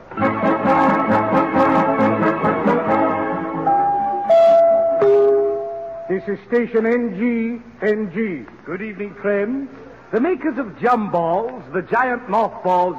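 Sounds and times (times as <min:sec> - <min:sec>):
loud orchestral overture opening a Christmas play: 0:00.1 - 0:06.3
speech: 0:06.3 - 0:12.9.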